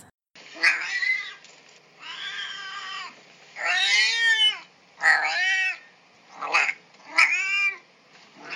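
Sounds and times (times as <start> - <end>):
domestic cat meowing: 0.6 - 1.4, 2.0 - 5.8, 6.4 - 7.8, 8.4 - 8.5.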